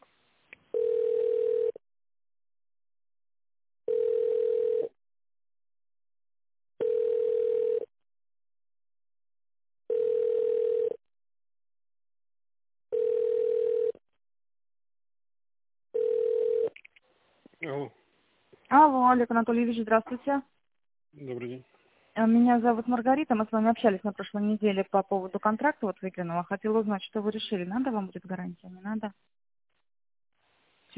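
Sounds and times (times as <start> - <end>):
telephone ringback tone while a call is transferred: 0.7 - 1.8, 3.9 - 4.9, 6.8 - 7.9, 9.9 - 11.0, 12.9 - 14.0, 16.0 - 16.8
speech: 19.1 - 20.6, 21.2 - 29.3.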